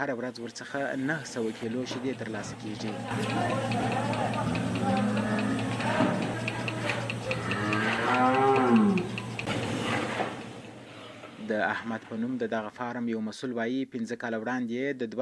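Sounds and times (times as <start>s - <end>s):
speech: 0.0s - 6.2s, 11.5s - 15.2s
cows lowing on a dairy farm in Kandahar's Dand district: 2.6s - 9.5s.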